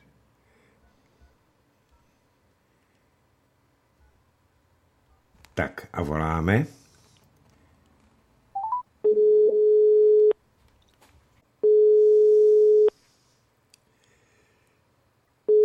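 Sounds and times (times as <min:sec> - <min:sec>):
speech: 0:05.6 - 0:06.8
quick telephone dialing beeps: 0:08.6 - 0:10.4
telephone ringback tone on the line: 0:08.6 - 0:10.4, 0:11.6 - 0:12.9, 0:15.5 - 0:15.6.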